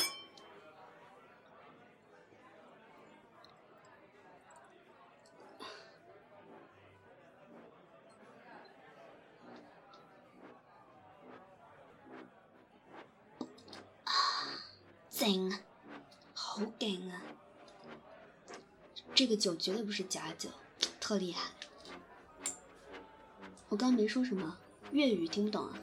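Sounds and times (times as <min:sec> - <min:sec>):
glasses clinking in a toast: 0:00.0 - 0:00.5
crowd chatter in a busy room: 0:00.0 - 0:25.8
speech: 0:15.2 - 0:15.6, 0:16.8 - 0:17.4, 0:19.2 - 0:21.6, 0:23.7 - 0:25.8.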